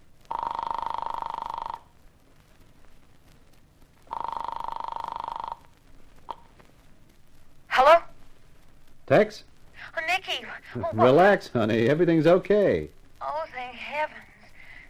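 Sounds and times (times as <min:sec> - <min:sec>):
telephone ringing tones through a telephone line: 0:00.3 - 0:02.0, 0:04.1 - 0:05.7
speech: 0:09.1 - 0:09.5, 0:10.3 - 0:13.0.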